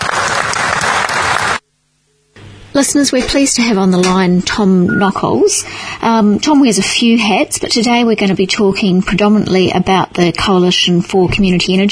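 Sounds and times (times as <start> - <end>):
group applauding: 0.0 - 1.6
speech: 2.8 - 11.9.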